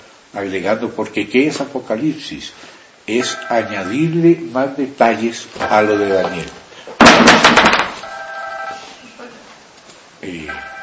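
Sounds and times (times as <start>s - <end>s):
speech: 0.3s - 7.7s
cell phone ringing with a bright electronic tone: 3.2s - 4.1s, 5.6s - 6.5s, 8.0s - 8.9s, 10.5s - 10.8s
loud clattering: 7.0s - 8.0s.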